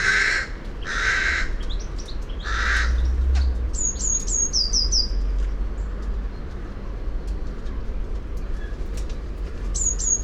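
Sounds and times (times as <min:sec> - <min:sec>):
Eurasian blue tit Cyanistes caeruleus calling: 0:00.0 - 0:05.2, 0:09.8 - 0:10.2
steady low rumble: 0:00.0 - 0:09.8.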